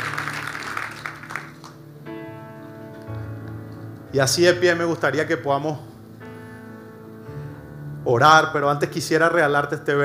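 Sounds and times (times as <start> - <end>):
crowd applauding: 0.0 - 1.9
speech: 4.1 - 5.9, 8.1 - 10.0.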